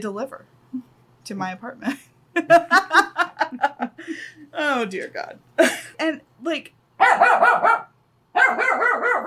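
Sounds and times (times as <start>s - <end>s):
speech: 0.0s - 9.2s
laughter: 2.4s - 4.1s
dog barking: 7.0s - 9.2s.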